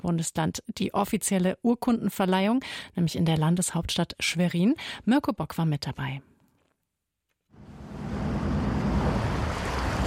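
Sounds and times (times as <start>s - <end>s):
speech: 0.0s - 6.3s
sea waves: 7.6s - 10.0s
small fishing boat engine starting and rumbling: 7.6s - 10.0s.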